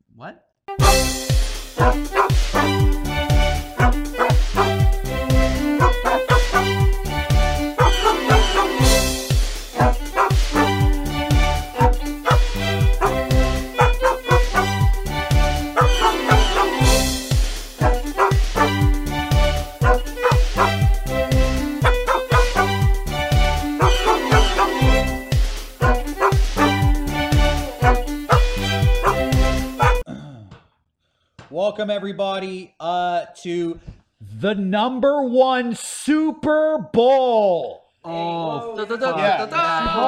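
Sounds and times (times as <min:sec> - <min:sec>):
speech: 0:00.2 - 0:02.1, 0:33.4 - 0:40.0
upbeat musical backing: 0:00.7 - 0:30.0
dogs barking in rhythm to a melody: 0:01.8 - 0:03.0, 0:03.6 - 0:04.8, 0:05.6 - 0:06.8, 0:07.7 - 0:09.2, 0:09.8 - 0:14.8, 0:15.6 - 0:17.2, 0:17.8 - 0:19.0, 0:19.6 - 0:20.8, 0:21.6 - 0:22.8, 0:23.6 - 0:25.2, 0:25.8 - 0:30.0.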